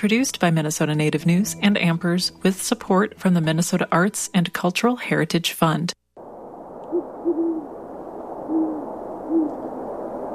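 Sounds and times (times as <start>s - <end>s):
speech: 0.0s - 6.0s
great horned owl soft low hooting call: 6.9s - 7.8s, 8.4s - 9.8s.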